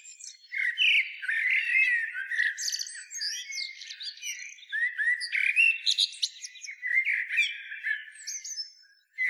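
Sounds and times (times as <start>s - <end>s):
Eurasian blackbird Turdus merula singing: 0.0s - 9.2s.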